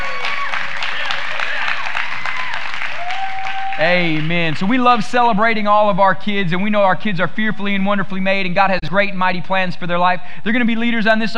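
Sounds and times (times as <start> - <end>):
congregation applauding: 0.0 - 5.1
speech: 3.8 - 11.3.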